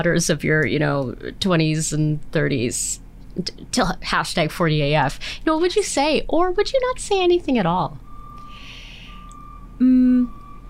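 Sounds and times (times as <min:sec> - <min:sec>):
speech: 0:00.0 - 0:08.0, 0:09.8 - 0:10.4
recycling truck reversing alarm beep: 0:07.9 - 0:10.6.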